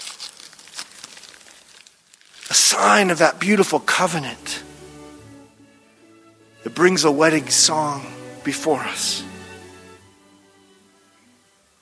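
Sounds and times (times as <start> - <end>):
wrapping paper crinkling and tearing as a jewelry box is unwrapped: 0.0 - 2.7
speech: 2.6 - 4.6, 6.7 - 9.4.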